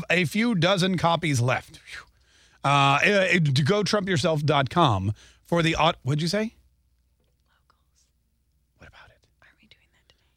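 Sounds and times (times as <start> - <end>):
speech: 0.1 - 6.6
person whispering close to the microphone: 7.4 - 8.2, 8.8 - 10.3.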